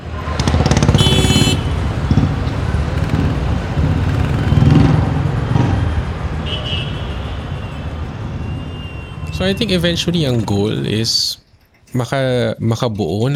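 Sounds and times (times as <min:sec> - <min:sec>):
cars rumbling past on busy highway: 0:00.0 - 0:11.8
speech: 0:09.4 - 0:13.3.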